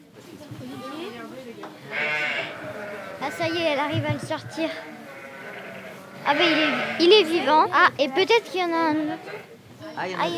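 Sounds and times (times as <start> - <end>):
sheep bleating during birth of a lamb: 1.9 - 7.6
speech: 3.4 - 4.9, 6.3 - 10.3.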